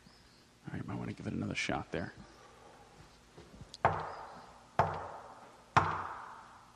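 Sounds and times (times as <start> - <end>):
speech: 1.1 - 2.2
knocking on a door: 3.8 - 4.2, 4.8 - 5.2, 5.8 - 6.2.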